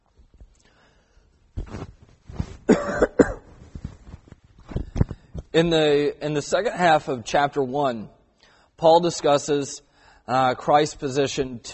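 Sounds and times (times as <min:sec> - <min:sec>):
throat clearing: 0:02.7 - 0:03.4
person coughing: 0:02.7 - 0:03.5
speech: 0:05.5 - 0:08.2, 0:08.8 - 0:11.7.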